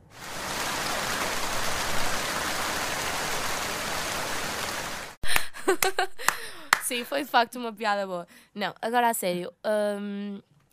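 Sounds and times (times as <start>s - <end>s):
steady dense rainfall: 0.0s - 5.2s
laughter: 5.3s - 6.7s
speech: 6.9s - 10.5s.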